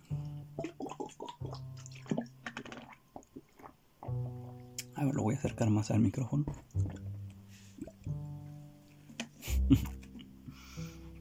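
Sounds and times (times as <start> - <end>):
person sipping and gulping water: 0.0 - 5.6, 6.5 - 8.1
small mouth clicks and squishy sounds: 0.6 - 5.0
speech: 5.0 - 6.8, 9.7 - 10.0
laughter: 9.4 - 10.1.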